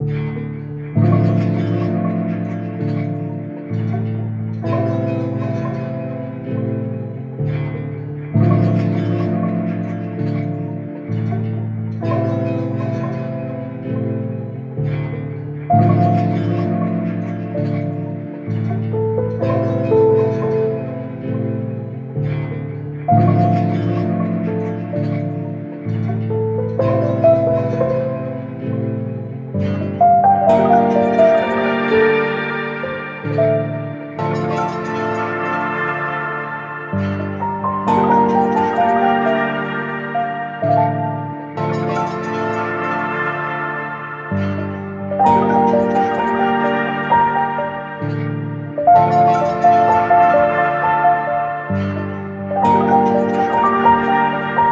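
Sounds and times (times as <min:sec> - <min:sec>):
piano in a room: 0:00.0 - 0:54.7.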